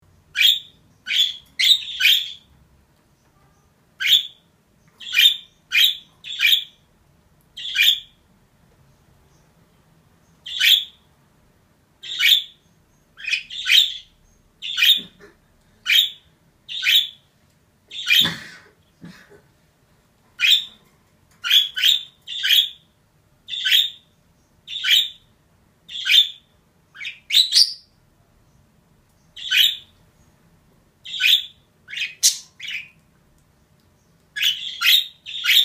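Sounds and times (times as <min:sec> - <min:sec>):
budgerigar chirping: 0:00.3 - 0:02.5, 0:04.0 - 0:04.4, 0:05.0 - 0:06.8, 0:07.6 - 0:08.2, 0:10.4 - 0:11.0, 0:12.0 - 0:12.6, 0:13.2 - 0:15.2, 0:15.8 - 0:17.2, 0:17.9 - 0:18.3, 0:20.4 - 0:20.8, 0:21.4 - 0:25.3, 0:25.9 - 0:28.0, 0:29.4 - 0:30.0, 0:31.0 - 0:33.0, 0:34.4 - 0:35.6.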